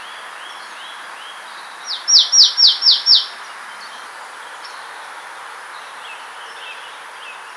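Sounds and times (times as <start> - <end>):
marsh tit Poecile palustris calling: 1.8 - 3.5.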